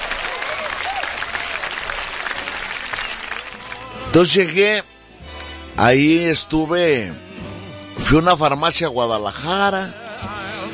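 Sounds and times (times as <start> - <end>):
crowd applauding: 0.0 - 4.7
speech: 4.2 - 4.9, 5.8 - 7.4, 8.1 - 10.0.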